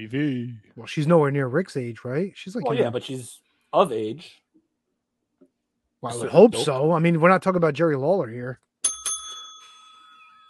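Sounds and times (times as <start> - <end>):
speech: 0.0 - 4.4, 6.0 - 8.6
small bell struck: 8.8 - 10.4.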